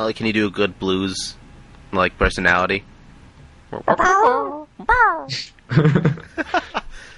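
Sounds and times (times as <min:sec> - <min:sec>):
speech: 0:00.0 - 0:02.9, 0:03.7 - 0:07.1
person imitating a dog's howl: 0:03.9 - 0:05.4
laughter: 0:05.7 - 0:06.9.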